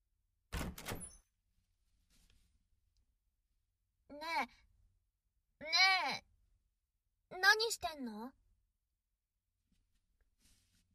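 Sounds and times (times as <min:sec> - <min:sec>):
door being pushed open with rattling clunk: 0:00.5 - 0:01.2
speech: 0:04.2 - 0:04.7, 0:07.4 - 0:08.4.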